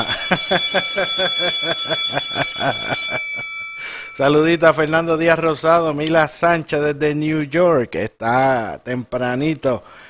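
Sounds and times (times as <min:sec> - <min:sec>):
laughter: 0:00.0 - 0:03.4
hand bell ringing: 0:00.0 - 0:05.2
speech: 0:00.5 - 0:10.0.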